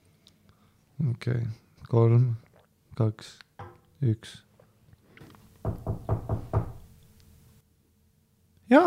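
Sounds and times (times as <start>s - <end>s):
speech: 1.0s - 2.4s, 3.0s - 4.5s
firm knocks on a door as a sound effect: 5.6s - 6.9s.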